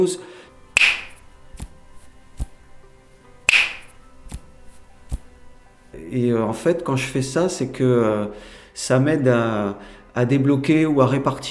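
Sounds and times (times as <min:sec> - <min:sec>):
speech: 0:00.0 - 0:00.4, 0:06.1 - 0:11.4
finger snapping: 0:00.7 - 0:02.8, 0:03.5 - 0:05.6.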